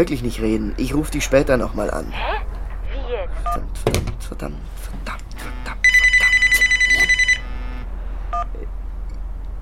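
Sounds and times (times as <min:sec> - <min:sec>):
speech: 0:00.0 - 0:02.4, 0:03.3 - 0:05.6
short beeps: 0:05.4 - 0:07.8
telephone ringing with electronic trill: 0:05.8 - 0:07.8.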